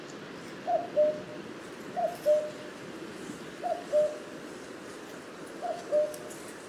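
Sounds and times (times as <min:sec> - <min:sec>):
common cuckoo calling: 0:00.7 - 0:01.2, 0:02.0 - 0:02.6, 0:03.6 - 0:04.2, 0:05.6 - 0:06.3
speech: 0:00.9 - 0:02.7, 0:03.6 - 0:04.3.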